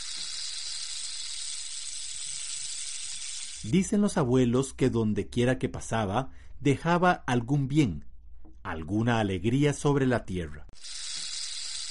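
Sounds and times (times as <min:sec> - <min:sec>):
snake tail rattling: 0:00.0 - 0:03.8, 0:10.8 - 0:11.8
speech: 0:03.6 - 0:08.1, 0:08.7 - 0:10.9.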